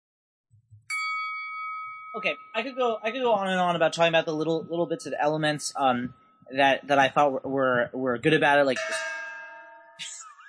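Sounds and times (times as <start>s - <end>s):
bright bell ding signalling start of turn: 0.9s - 4.6s, 8.7s - 10.4s
speech: 2.2s - 9.1s.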